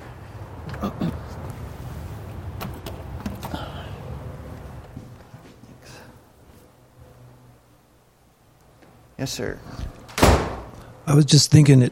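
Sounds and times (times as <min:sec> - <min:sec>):
speech: 0:09.2 - 0:09.9, 0:11.1 - 0:11.9
door pulled shut with sharp knocks and latch clicks: 0:10.1 - 0:10.7.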